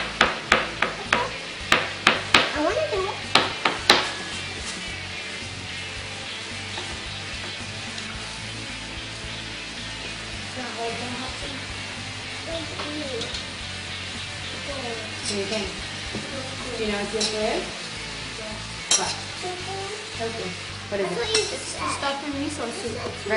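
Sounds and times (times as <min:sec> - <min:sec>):
food being chopped in a kitchen: 0:00.0 - 0:02.6, 0:03.2 - 0:04.3
steady hiss: 0:00.0 - 0:23.3.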